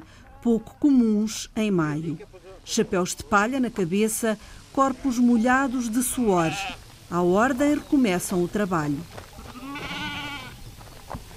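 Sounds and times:
speech: 0:00.4 - 0:09.3
sheep bleating while caught for shearing: 0:06.0 - 0:06.8, 0:09.4 - 0:10.6.

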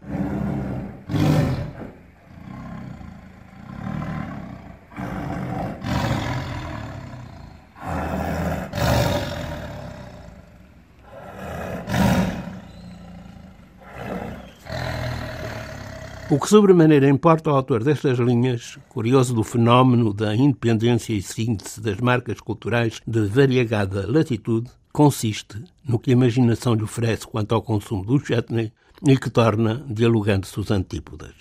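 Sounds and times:
tigers roaring: 0:00.0 - 0:16.6
speech: 0:16.3 - 0:31.3.

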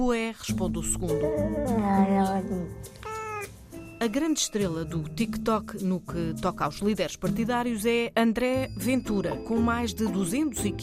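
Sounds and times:
speech: 0:00.0 - 0:03.0, 0:04.0 - 0:10.8
two cats meowing: 0:03.0 - 0:03.6.

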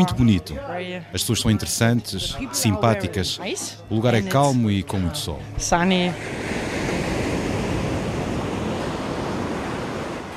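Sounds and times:
speech: 0:00.0 - 0:06.6
ocean waves breaking on the shore at Jardim do Mar, Madeira: 0:05.5 - 0:10.3
wind noise: 0:06.2 - 0:10.3.

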